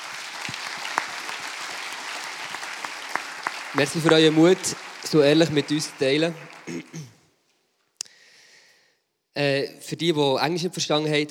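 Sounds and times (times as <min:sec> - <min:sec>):
audience applause: 0:00.0 - 0:06.9
speech: 0:03.7 - 0:07.2, 0:09.4 - 0:11.2.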